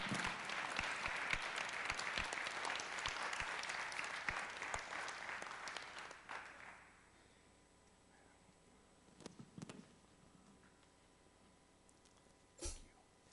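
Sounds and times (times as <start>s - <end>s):
audience applause: 0.0s - 7.0s.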